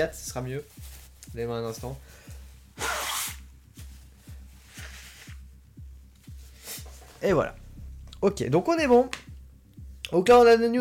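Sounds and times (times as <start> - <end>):
speech: 0.0 - 2.2, 7.2 - 7.6, 8.2 - 9.2, 10.1 - 10.7
steady low rhythmic thumping: 0.0 - 10.7
person blowing nose: 2.8 - 3.5.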